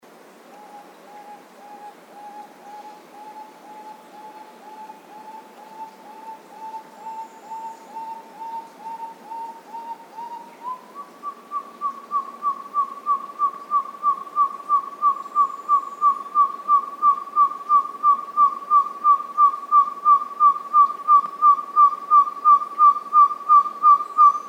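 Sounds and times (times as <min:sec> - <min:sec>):
large-tailed nightjar calling: 0:00.5 - 0:24.4.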